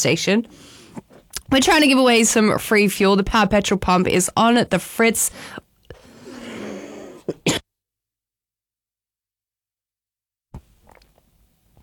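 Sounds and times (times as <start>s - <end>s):
speech: 0.0s - 0.8s, 1.5s - 5.6s
raspy coughing: 6.6s - 7.6s
throat clearing: 7.0s - 7.6s.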